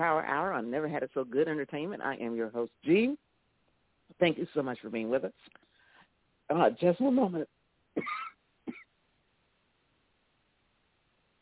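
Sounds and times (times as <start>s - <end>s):
speech: 0.0s - 3.3s, 4.1s - 5.6s, 6.5s - 8.8s
person coughing or clearing throat: 8.0s - 8.9s.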